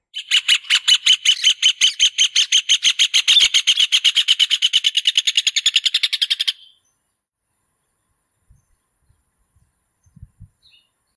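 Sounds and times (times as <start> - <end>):
Joao de Barro bird singing: 0.1 - 7.2, 10.0 - 11.1.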